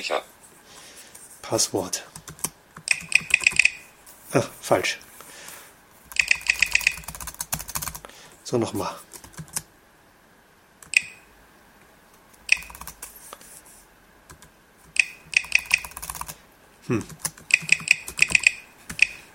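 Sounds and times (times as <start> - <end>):
speech: 0.0 - 0.3, 1.4 - 2.4, 4.3 - 5.1, 8.5 - 9.1, 16.9 - 17.3
keyboard keys clicking as a password is typed using VoiceOver: 2.2 - 3.8, 6.1 - 8.0, 12.5 - 13.1, 14.3 - 16.4, 17.0 - 19.3
person murmuring: 16.8 - 17.2.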